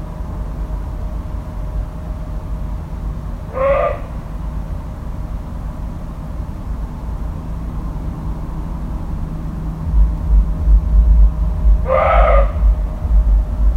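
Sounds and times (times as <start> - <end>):
steady low rumble of background noise: 0.0 - 13.7
deer bleat-like call: 3.5 - 4.3, 11.8 - 12.6.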